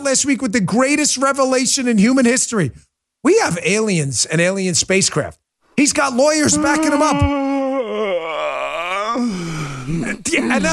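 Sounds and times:
speech: 0:00.1 - 0:07.4, 0:10.5 - 0:10.7
person letting out an exaggerated yawn: 0:06.4 - 0:10.1.

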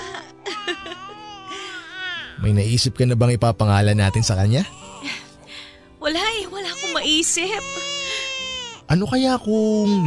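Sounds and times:
newborn baby crying: 0:00.0 - 0:02.5, 0:03.8 - 0:05.4, 0:06.4 - 0:08.9, 0:09.8 - 0:10.0
speech: 0:02.4 - 0:04.8, 0:07.2 - 0:08.0, 0:08.9 - 0:10.0.

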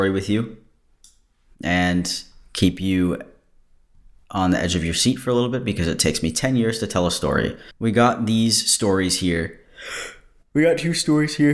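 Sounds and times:
speech: 0:00.0 - 0:00.6, 0:01.6 - 0:03.3, 0:04.3 - 0:11.5
long voiced yawn: 0:09.8 - 0:10.3.

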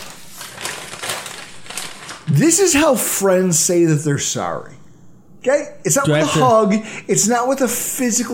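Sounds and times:
paper bag rustling as a bottle of bourbon is pulled out: 0:00.0 - 0:02.9
speech: 0:02.3 - 0:08.3.

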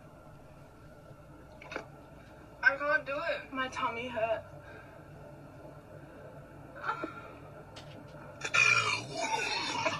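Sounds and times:
speech: 0:03.1 - 0:04.6
woman burping in a car after chugging a carbonated drink: 0:08.6 - 0:09.9.

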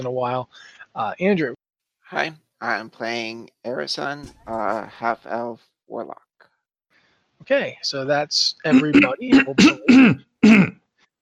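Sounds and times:
speech: 0:00.0 - 0:06.2, 0:07.4 - 0:10.8
rough gravelly throat clearing: 0:08.7 - 0:10.8.

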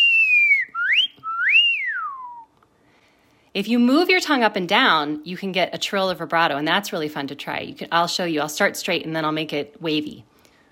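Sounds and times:
person whistling a clear piercing tone: 0:00.0 - 0:02.5
speech: 0:03.6 - 0:10.3.

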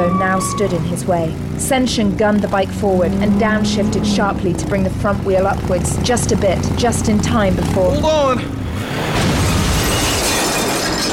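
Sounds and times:
speech: 0:00.1 - 0:09.1
motorcycle smashing through a glass window: 0:08.9 - 0:11.1.

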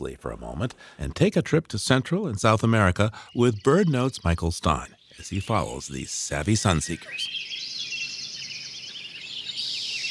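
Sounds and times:
speech: 0:00.0 - 0:07.5
summer dawn chorus of many birds singing at first light: 0:02.4 - 0:10.0.

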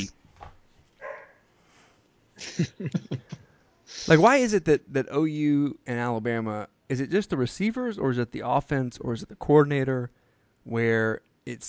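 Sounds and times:
dog barking: 0:01.0 - 0:01.4
laughter: 0:02.4 - 0:04.2
speech: 0:02.5 - 0:11.6.

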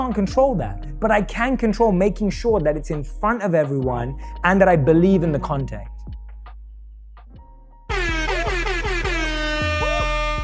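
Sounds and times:
speech: 0:00.1 - 0:05.9
air horn sound effect blasts: 0:07.9 - 0:10.4.

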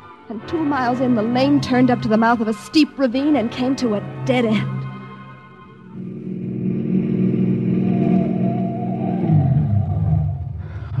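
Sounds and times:
speech: 0:00.3 - 0:04.8
car engine revving on a narrow rutted lane: 0:06.0 - 0:10.2.

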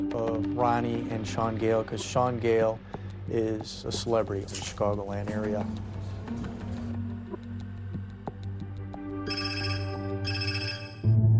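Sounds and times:
low humming drone: 0:00.0 - 0:09.1
speech: 0:00.2 - 0:06.5
telephone ringing with bright electronic bursts: 0:09.2 - 0:11.1.

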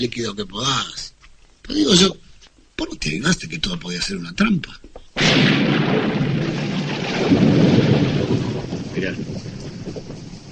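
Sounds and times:
speech: 0:00.0 - 0:06.6, 0:09.0 - 0:09.5
heavy downpour of rain with a deep rumbling undertone: 0:05.2 - 0:10.5.

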